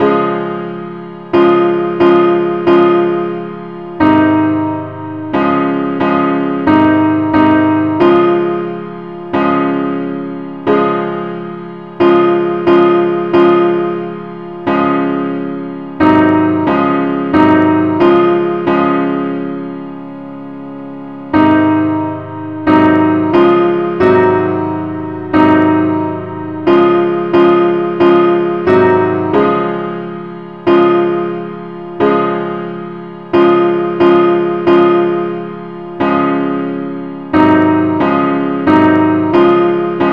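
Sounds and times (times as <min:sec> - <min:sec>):
simple accompaniment in D flat: 0:00.0 - 0:40.1.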